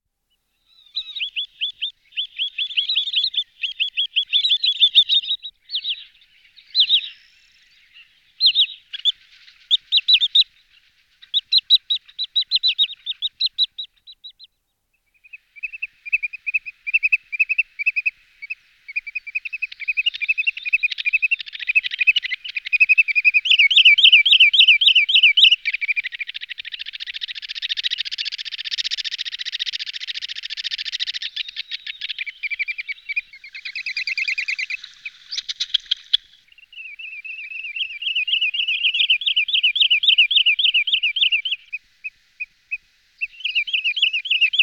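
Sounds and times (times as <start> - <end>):
wood sandpiper Tringa glareola calling: 0.7 - 14.6, 15.2 - 44.6.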